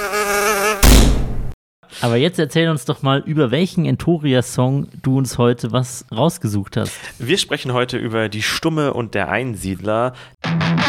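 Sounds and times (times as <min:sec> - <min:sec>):
mosquito buzzing: 0:00.0 - 0:00.8
speech: 0:02.0 - 0:10.8.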